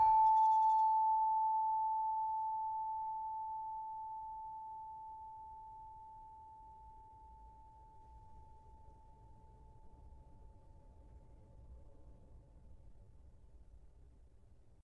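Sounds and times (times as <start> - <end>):
tuned gravity harps: 0.0 - 7.2
saron note A5: 0.0 - 10.1.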